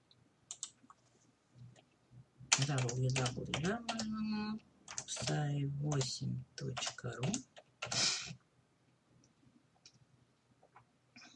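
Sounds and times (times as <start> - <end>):
typing on a computer keyboard: 0.5 - 0.8, 2.5 - 4.1, 4.9 - 8.0
speech: 2.6 - 7.5.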